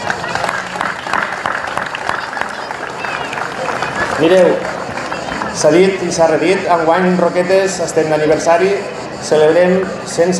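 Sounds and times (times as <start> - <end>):
sustained applause from a sizable audience: 0.0 - 6.6
speech: 4.2 - 4.7, 5.6 - 10.3.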